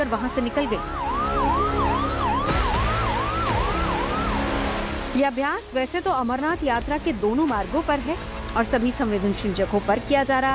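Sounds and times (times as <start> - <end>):
speech: 0.0 - 1.2, 5.2 - 10.5
ambulance siren yelping during a security drill on an Amarnath Yatra route: 0.0 - 5.1.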